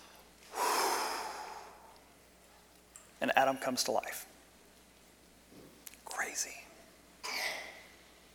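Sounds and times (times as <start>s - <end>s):
voice imitating breath blown into a nose: 0.5s - 1.9s
speech: 3.2s - 4.3s, 6.4s - 6.6s.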